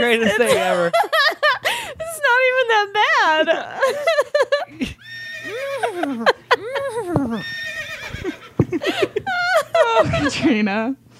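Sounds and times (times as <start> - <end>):
speech: 0.0 - 1.4, 10.5 - 11.0
laughter: 0.0 - 2.1, 3.5 - 10.6
steady low hum: 0.0 - 11.1
person imitating a horse whinny: 5.0 - 8.5.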